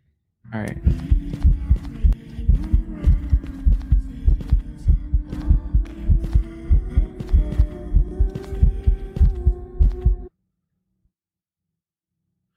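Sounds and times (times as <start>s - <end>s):
speech: 0.5s - 1.8s
heartbeat sound effect from a video game: 0.8s - 10.3s
low droning hum: 0.8s - 10.3s.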